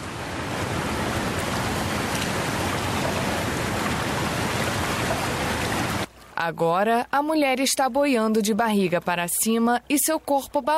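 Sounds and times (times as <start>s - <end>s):
water gushing from a dam: 0.0s - 6.1s
speech: 6.4s - 10.7s.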